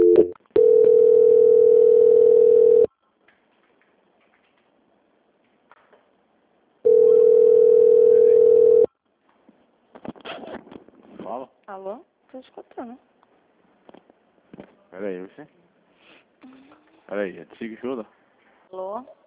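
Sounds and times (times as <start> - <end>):
telephone tones during a call transfer: 0.0 - 2.9, 6.9 - 8.9
speech: 12.4 - 13.1, 15.0 - 15.6, 16.4 - 19.2.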